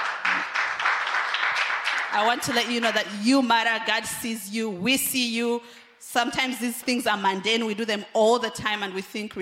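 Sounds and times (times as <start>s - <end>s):
audience clapping: 0.0s - 2.8s
speech: 2.1s - 9.4s.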